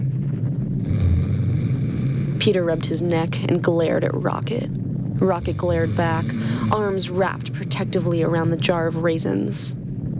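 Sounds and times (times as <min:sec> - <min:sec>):
low rumbling snore: 0:00.8 - 0:03.8, 0:05.2 - 0:09.2
speech: 0:02.4 - 0:09.8.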